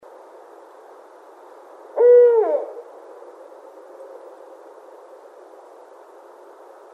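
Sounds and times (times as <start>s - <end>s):
barred owl hooting: 2.0s - 2.9s.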